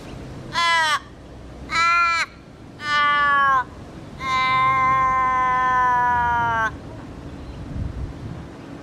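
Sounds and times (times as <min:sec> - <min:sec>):
faint noise: 0:00.0 - 0:08.8
Australian raven calling: 0:00.5 - 0:06.9.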